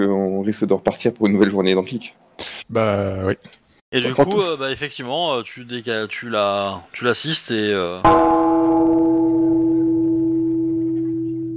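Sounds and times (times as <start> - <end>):
speech: 0.0 - 9.2
gong ringing: 8.1 - 11.5.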